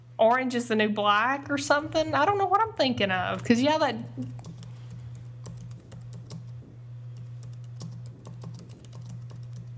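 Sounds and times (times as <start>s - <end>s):
constant low electrical hum: 0.0s - 9.7s
speech: 0.2s - 4.5s
typing on a computer keyboard: 4.2s - 6.5s, 7.2s - 9.7s.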